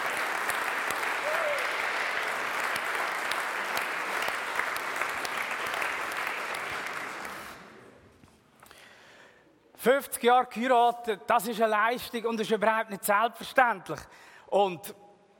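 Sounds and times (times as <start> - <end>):
audience applause: 0.0 - 7.9
speech: 9.8 - 15.0.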